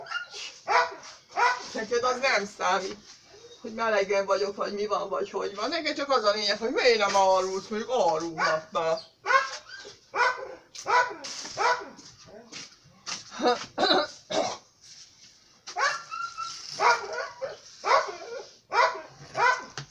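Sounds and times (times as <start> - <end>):
dog barking: 0.0 - 1.8, 8.4 - 12.1, 15.7 - 16.2, 16.8 - 19.8
speech: 1.8 - 9.1.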